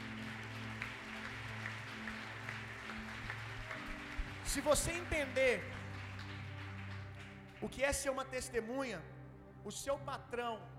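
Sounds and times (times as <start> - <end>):
church audience clapping: 0.0 - 8.2
speech: 4.5 - 5.8, 7.6 - 10.7.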